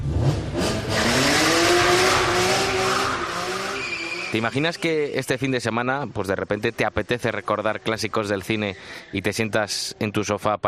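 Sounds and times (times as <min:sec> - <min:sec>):
car engine roaring: 0:00.0 - 0:10.0
tires squealing in a burnout: 0:00.6 - 0:05.7, 0:06.6 - 0:09.8
speech: 0:04.4 - 0:10.6.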